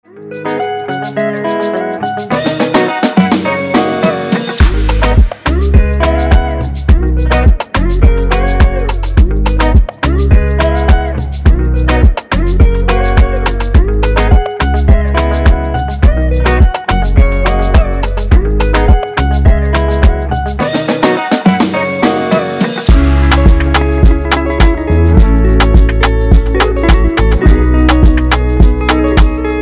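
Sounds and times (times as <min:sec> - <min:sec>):
afrobeat drums: 0:01.4 - 0:29.6.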